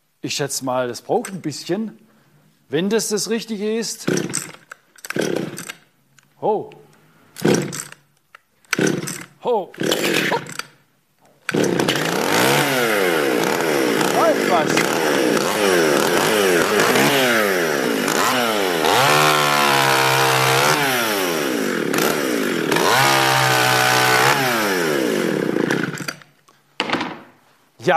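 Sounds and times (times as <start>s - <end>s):
speech: 0.2s - 2.1s, 2.7s - 4.6s, 6.4s - 6.8s, 9.4s - 10.5s
chainsaw engine revving: 4.0s - 5.8s, 7.3s - 8.0s, 8.7s - 10.8s, 11.4s - 26.2s.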